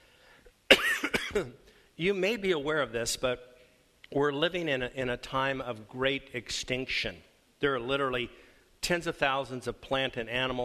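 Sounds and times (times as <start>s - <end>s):
harsh cough: 0.7s - 1.6s
speech: 1.3s - 3.5s, 4.1s - 10.6s.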